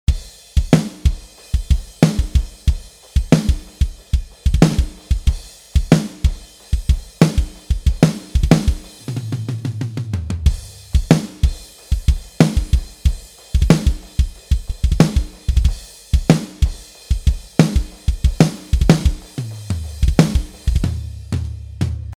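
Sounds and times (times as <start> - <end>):
drum samples: 0.0 - 22.1.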